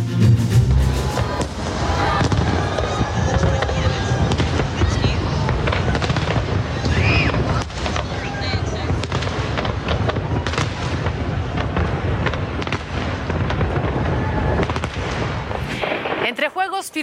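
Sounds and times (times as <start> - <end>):
music: 0.0 - 1.6
murmuring crowd: 0.0 - 16.2
New Year fireworks display booming and crackling: 0.0 - 17.0.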